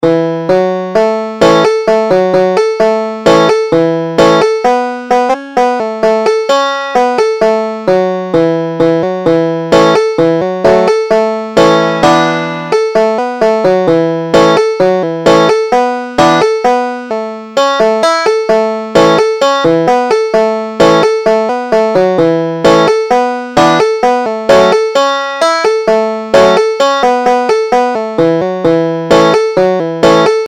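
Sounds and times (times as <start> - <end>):
banjo playing a gospel tune: 0.0 - 30.4.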